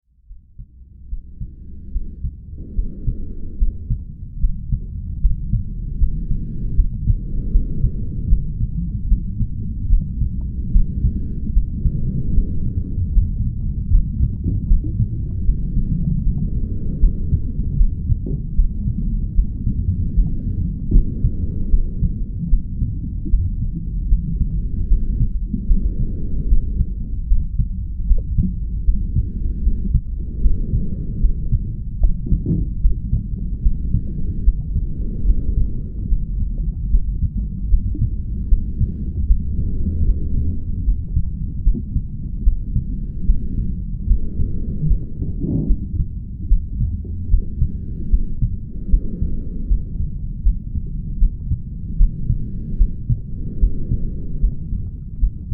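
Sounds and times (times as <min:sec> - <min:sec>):
sounds inside a mother's womb: 0:00.0 - 0:55.5.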